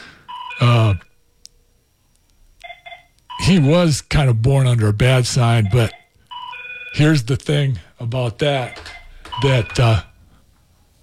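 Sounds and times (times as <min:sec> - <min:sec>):
phone ringing with short electronic tonal bursts: 0:00.3 - 0:01.1, 0:02.6 - 0:03.7, 0:05.5 - 0:07.2, 0:08.4 - 0:10.2
speech: 0:03.5 - 0:06.0, 0:07.0 - 0:10.1.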